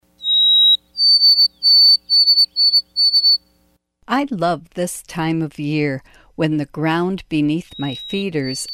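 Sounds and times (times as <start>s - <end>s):
White-throated sparrow song: 0.2s - 3.4s, 7.7s - 8.7s
speech: 4.1s - 8.7s.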